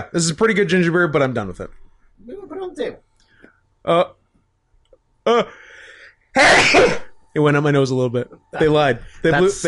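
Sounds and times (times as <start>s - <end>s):
speech: 0.0s - 3.1s, 3.8s - 4.2s, 5.2s - 5.6s, 6.4s - 9.6s
person sneezing: 6.4s - 7.1s.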